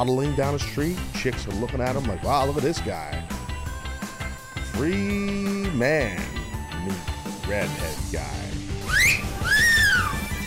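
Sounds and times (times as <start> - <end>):
speech: 0.0 - 3.4, 4.7 - 8.5
wolf whistle: 8.8 - 10.4.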